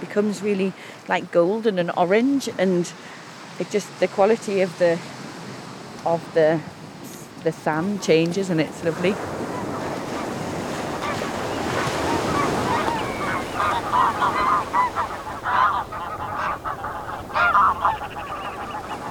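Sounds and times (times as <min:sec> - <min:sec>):
wind at a beach: 0:00.0 - 0:19.0
speech: 0:00.2 - 0:05.2, 0:06.0 - 0:06.7, 0:07.4 - 0:09.4
roar of surf at a beach: 0:06.6 - 0:19.0
flock of geese honking at a beach with a lagoon: 0:07.9 - 0:19.0.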